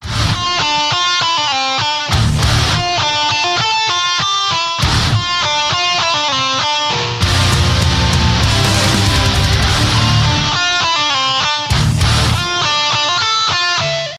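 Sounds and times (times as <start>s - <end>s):
electric guitar ringtone: 0.1s - 14.1s.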